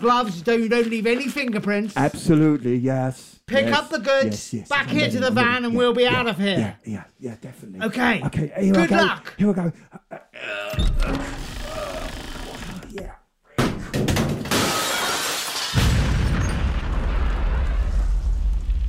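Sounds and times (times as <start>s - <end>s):
speech: 0.0s - 11.5s
debris crashing: 14.0s - 18.8s
glass shattering: 14.4s - 16.9s
loud explosion: 14.5s - 18.8s.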